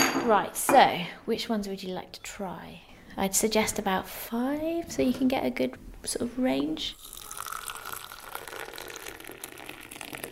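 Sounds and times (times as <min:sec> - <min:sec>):
speech: 0:00.3 - 0:07.2
English breakfast tea pouring into cups: 0:06.9 - 0:10.3.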